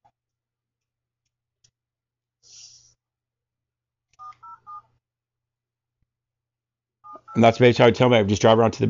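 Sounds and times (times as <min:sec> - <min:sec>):
telephone keypad tones dialing a number: 0:04.2 - 0:04.9
speech: 0:07.4 - 0:08.8.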